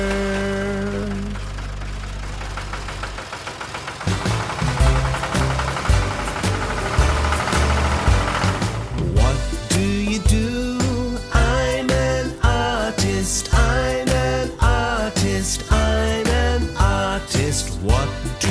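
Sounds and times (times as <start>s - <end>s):
heavy tractor engine chugging and idling: 0.0s - 18.5s
upbeat music with a rhythmic beat: 4.1s - 18.5s.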